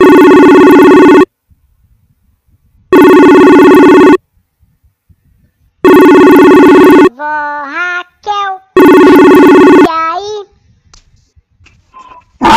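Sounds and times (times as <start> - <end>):
telephone ringing in bright electronic bursts: 0.0 - 1.3, 2.9 - 4.2, 5.8 - 7.1, 8.8 - 9.9.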